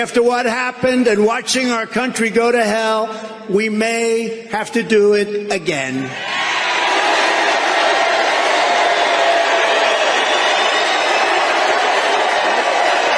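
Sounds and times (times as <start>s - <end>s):
speech: 0.0s - 6.5s
large crowd applause: 6.2s - 13.1s.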